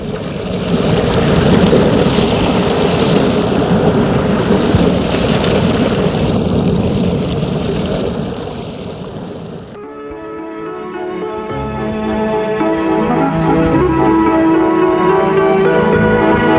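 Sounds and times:
sea waves and surf: 0.0s - 16.5s
wind buffeting: 0.0s - 16.5s.

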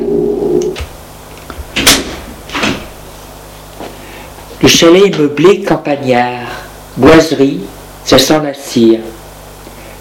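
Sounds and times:
door soft thud: 1.6s - 3.0s
speech: 4.7s - 9.2s.

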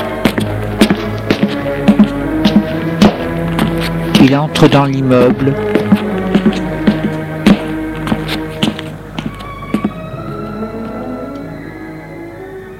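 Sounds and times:
footsteps on marble stairs inside an apartment building: 0.0s - 10.2s
speech: 4.2s - 6.6s.

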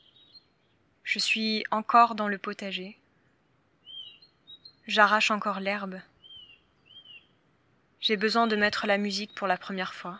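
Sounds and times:
high whistled bird calls in a vegetable garden: 0.0s - 0.6s, 3.8s - 5.1s, 6.2s - 7.4s
speech: 1.2s - 3.0s, 4.9s - 6.1s, 8.0s - 10.1s.

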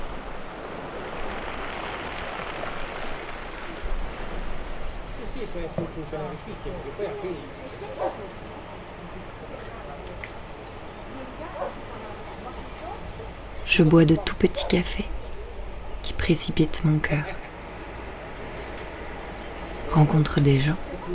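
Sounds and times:
sea waves rolling pebbles on a shore: 0.0s - 5.8s
speech: 5.4s - 8.5s, 13.7s - 15.2s, 16.3s - 17.4s, 20.0s - 21.1s.

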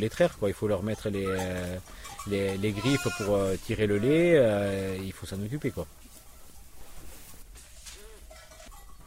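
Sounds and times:
speech: 0.0s - 6.0s
ewes bleating while being given hay in a farm barn: 1.3s - 4.5s
steady rustling in a busy farm barn: 1.6s - 9.0s.

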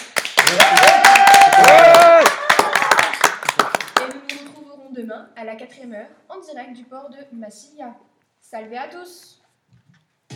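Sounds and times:
crowd applauding: 0.0s - 4.4s
people cheering: 0.4s - 4.0s
speech: 0.5s - 1.0s, 5.2s - 9.4s.

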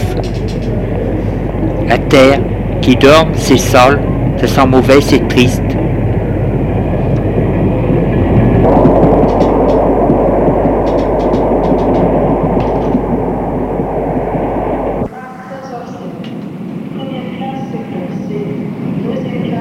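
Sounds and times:
faint high clicks and clatter: 0.0s - 0.9s, 8.6s - 13.2s
train carriage rumble at a nearly empty station at night: 0.0s - 19.5s
speech: 2.1s - 5.8s.

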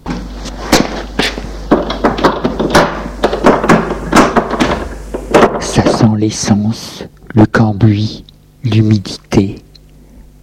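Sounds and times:
irregular knocks: 0.0s - 6.0s
door thudding shut: 1.7s - 6.0s
speech: 5.8s - 9.6s.

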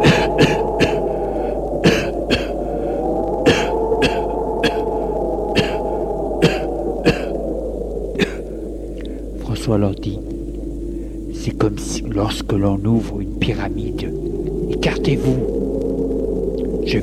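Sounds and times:
people coughing from smoke: 0.0s - 1.0s, 1.8s - 2.5s, 3.4s - 4.8s, 5.6s - 5.8s, 6.4s - 7.4s, 8.2s - 8.4s
steady low drone: 0.0s - 17.0s
speech: 12.2s - 14.4s.

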